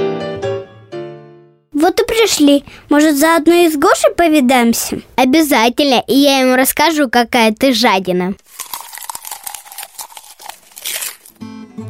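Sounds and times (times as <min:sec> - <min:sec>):
speech: 0:01.8 - 0:08.4
crunching and crinkling of paper: 0:08.4 - 0:11.4.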